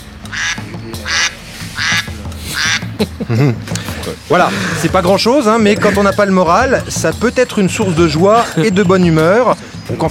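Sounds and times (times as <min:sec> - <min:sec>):
duck-quack ringtone playing on a mobile phone: 0:00.3 - 0:03.0
laughter: 0:00.3 - 0:10.1
speech: 0:03.0 - 0:10.1.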